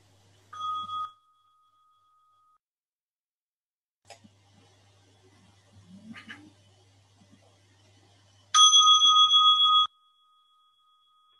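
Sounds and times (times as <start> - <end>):
bell ringing: 0.6 - 2.6, 8.6 - 11.3.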